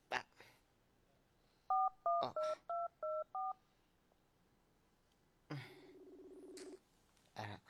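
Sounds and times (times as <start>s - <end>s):
cellphone keypad dialing beeps: 1.7s - 3.6s
cellphone ringing tone: 1.7s - 3.6s.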